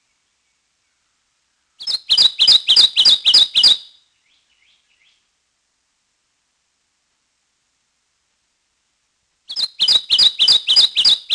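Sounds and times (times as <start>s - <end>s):
Kentucky Warbler song: 0.0s - 5.4s, 9.4s - 11.3s.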